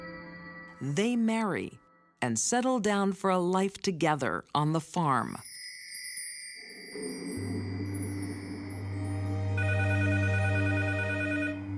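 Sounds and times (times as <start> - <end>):
speech: 0.8 - 5.5
telephone bell ringing: 5.5 - 11.7
deep sustained hum: 7.0 - 10.6.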